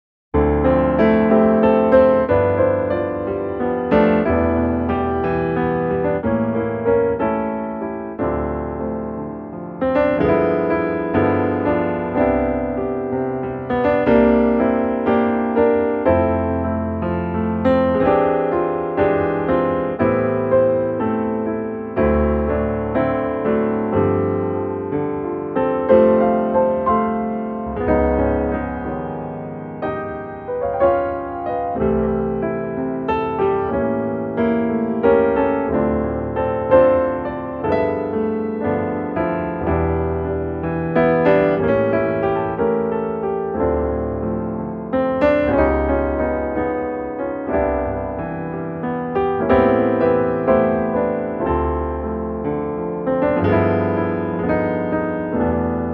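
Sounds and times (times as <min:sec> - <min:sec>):
cocktail piano music: 0:00.4 - 0:55.9.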